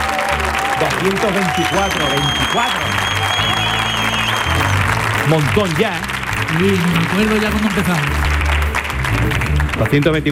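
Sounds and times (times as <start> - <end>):
audience applause in an auditorium: 0.0 - 10.2
speech: 1.0 - 3.2, 5.2 - 8.3, 9.1 - 10.2.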